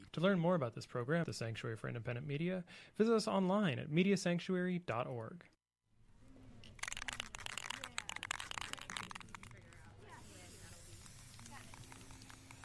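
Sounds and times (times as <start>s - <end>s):
speech: 0.1s - 5.6s
spray paint can spraying a cardboard sign: 6.8s - 12.6s.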